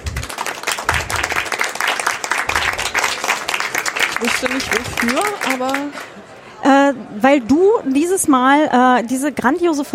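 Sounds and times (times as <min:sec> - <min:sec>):
audience applause: 0:00.0 - 0:06.3
speech: 0:04.2 - 0:09.9.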